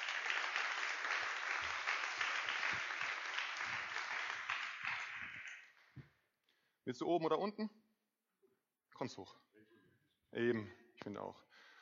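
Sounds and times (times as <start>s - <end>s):
audience applause: 0.0s - 5.8s
speech: 6.9s - 7.8s, 9.0s - 9.4s, 10.3s - 11.7s.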